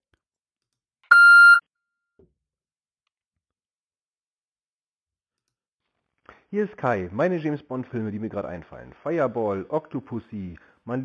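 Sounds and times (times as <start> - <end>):
answering machine beep before messages: 1.1 - 1.6
speech: 6.5 - 11.0.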